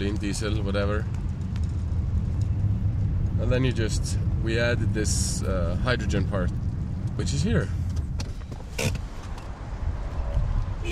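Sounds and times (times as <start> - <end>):
speech: 0.0 - 1.2, 3.4 - 6.6, 7.2 - 7.8, 8.8 - 9.0
car engine rumbling low at a filling station near Reykjavik: 0.0 - 10.8
sharp mechanical creak: 8.6 - 9.4.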